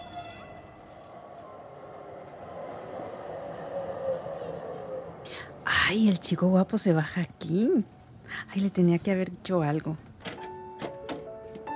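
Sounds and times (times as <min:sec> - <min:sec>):
brief metallic squeals of tram wheels: 0:00.0 - 0:05.8
tram rumbling as it stops at a station: 0:00.0 - 0:11.7
speech: 0:05.7 - 0:10.0.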